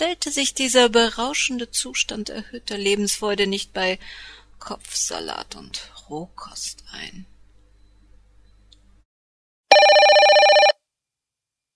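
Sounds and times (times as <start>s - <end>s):
speech: 0.0s - 7.3s
telephone bell ringing with trembling rattle: 9.7s - 10.8s.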